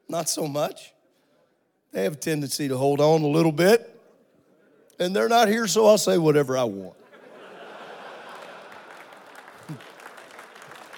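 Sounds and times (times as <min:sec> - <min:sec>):
speech: 0:00.1 - 0:01.0, 0:01.9 - 0:03.9, 0:05.0 - 0:07.0, 0:09.7 - 0:09.9
laughter: 0:07.0 - 0:10.1
audience clapping: 0:07.8 - 0:10.9.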